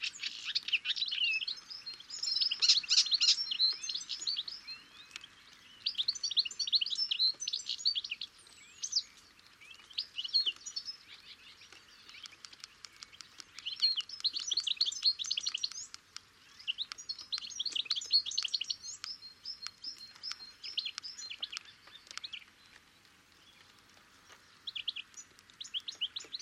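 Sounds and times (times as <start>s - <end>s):
bird twittering: 0.0s - 22.6s, 24.5s - 26.4s.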